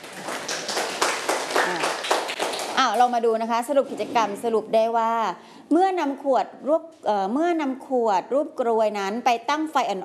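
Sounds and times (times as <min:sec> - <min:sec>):
classmates clapping hands during a classroom lesson: 0:00.0 - 0:03.2
speech: 0:02.8 - 0:10.0.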